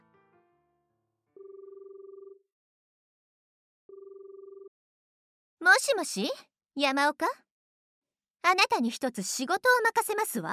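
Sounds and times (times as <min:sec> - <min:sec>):
phone ringback tones through the earpiece: 0:01.4 - 0:02.4, 0:03.9 - 0:04.7
speech: 0:05.7 - 0:07.4, 0:08.4 - 0:10.5.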